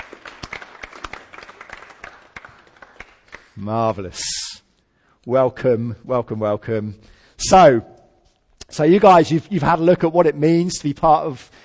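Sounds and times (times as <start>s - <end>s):
crowd applauding: 0.0s - 3.6s
speech: 3.6s - 4.4s, 5.2s - 7.9s, 8.7s - 11.6s.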